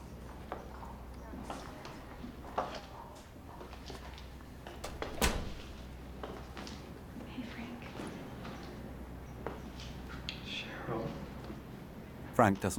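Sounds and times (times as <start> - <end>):
low hum: 0.0 - 12.7
soft footsteps across a room: 0.2 - 11.8
door shutting with a thud: 4.6 - 6.0
speech: 12.4 - 12.7.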